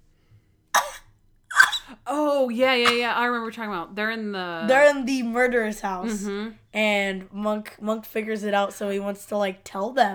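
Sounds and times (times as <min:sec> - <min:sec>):
person imitating a high-pitched cough: 0:00.8 - 0:01.9
speech: 0:02.1 - 0:10.1.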